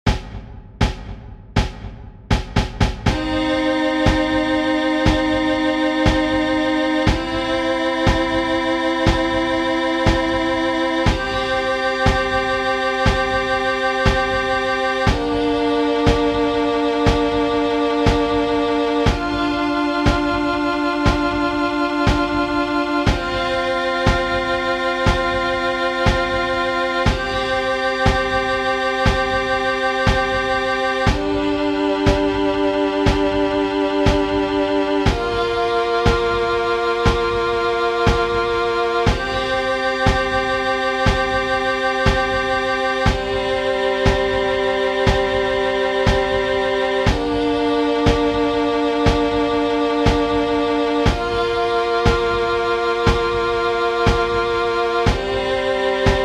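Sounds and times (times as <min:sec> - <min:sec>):
backing track music: 0:00.1 - 0:56.2.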